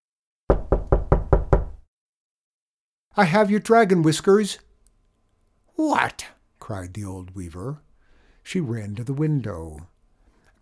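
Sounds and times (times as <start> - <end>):
firm knocks on a wooden door: 0.5 - 1.9
speech: 3.2 - 4.6, 5.8 - 7.8, 8.5 - 9.9.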